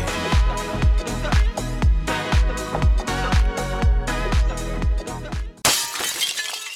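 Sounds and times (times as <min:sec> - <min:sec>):
steady pulsing music beat: 0:00.0 - 0:05.6
glass shattering: 0:05.6 - 0:06.7
glass fragments tinkling: 0:05.7 - 0:06.7.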